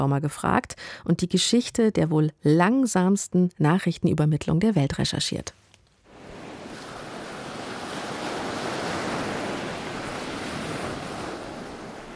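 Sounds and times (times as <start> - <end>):
speech: 0.0 - 5.6
light breeze: 5.7 - 12.1
gentle waves washing onto a sandy shore: 6.1 - 12.1.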